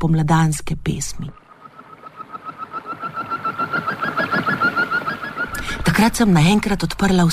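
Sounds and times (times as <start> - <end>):
speech: 0.0 - 1.4, 5.9 - 7.3
small birds chirping agitatedly above a river: 1.2 - 6.2.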